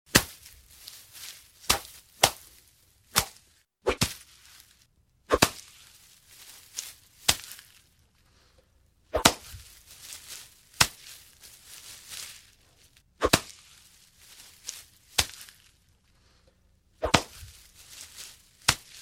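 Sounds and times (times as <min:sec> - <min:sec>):
machete: 0:00.1 - 0:00.6, 0:01.6 - 0:04.4, 0:05.3 - 0:05.9, 0:06.8 - 0:07.8, 0:09.1 - 0:09.6, 0:10.7 - 0:11.2, 0:13.2 - 0:13.8, 0:14.7 - 0:15.7, 0:17.0 - 0:18.9.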